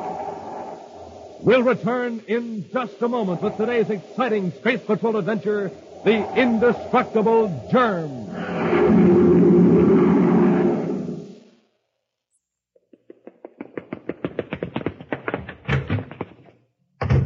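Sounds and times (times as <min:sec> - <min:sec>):
loud windy whoosh: 0:00.0 - 0:11.4
speech: 0:01.4 - 0:09.2.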